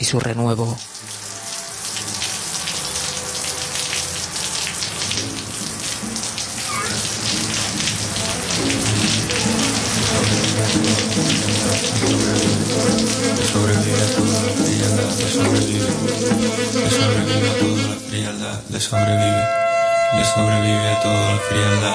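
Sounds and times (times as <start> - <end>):
speech: 0.0 - 1.0, 11.2 - 21.9
heavy rain pattering on hard surfaces: 0.0 - 18.8.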